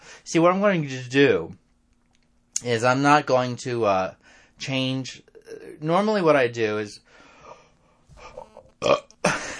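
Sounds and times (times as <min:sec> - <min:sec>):
speech: 0:00.3 - 0:01.6, 0:02.6 - 0:07.1, 0:08.2 - 0:09.1
person burping: 0:08.2 - 0:09.5.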